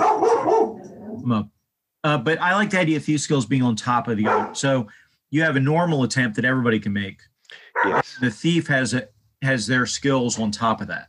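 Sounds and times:
dogs barking: 0.0 - 1.0, 4.2 - 4.6, 7.7 - 8.1
speech: 1.2 - 11.0.

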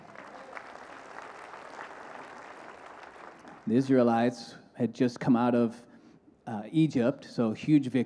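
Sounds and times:
audience applauding with dense sustained hand clapping: 0.0 - 3.9
speech: 3.7 - 5.9, 6.5 - 8.0.

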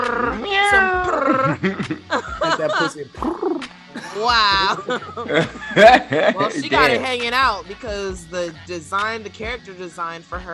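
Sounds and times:
person imitating a kitten with high drawn-out meows: 0.0 - 1.6
person chuckling: 0.8 - 3.4, 4.0 - 7.0
speech: 1.6 - 10.5.

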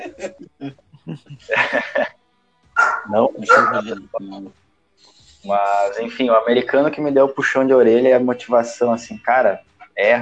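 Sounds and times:
laughter: 0.0 - 2.1, 3.1 - 4.5, 5.5 - 10.1
dog barking sharply: 2.8 - 3.8
speech: 3.1 - 4.6, 5.4 - 10.1.

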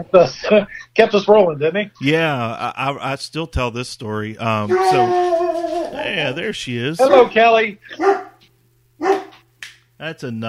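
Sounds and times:
speech: 0.0 - 5.4, 6.1 - 8.2, 10.0 - 10.4
faint steady hum: 0.0 - 10.4
laughter: 2.0 - 3.0
dog barking at the door: 7.9 - 8.4, 9.0 - 9.4.

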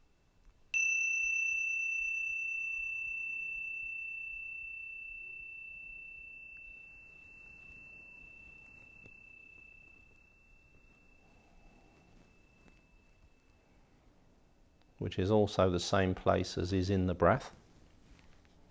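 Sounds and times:
meditation bell ringing with a clear pure tone: 0.8 - 14.3
speech: 15.0 - 17.6.

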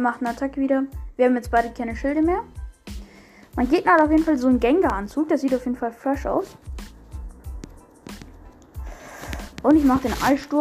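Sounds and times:
speech: 0.0 - 2.6, 3.6 - 6.9, 9.6 - 10.5
fingers swiping across a touchscreen during a game battle: 6.4 - 10.5.

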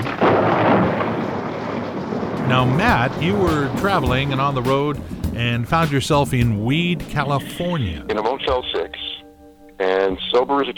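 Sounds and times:
thunder crack and rumble: 0.0 - 8.2
speech: 2.5 - 8.9, 9.8 - 10.7.

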